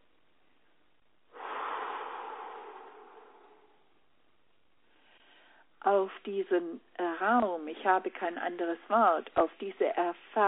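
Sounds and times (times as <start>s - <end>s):
long deep breath in and out: 1.3s - 4.2s, 4.8s - 5.8s
speech: 5.8s - 10.4s.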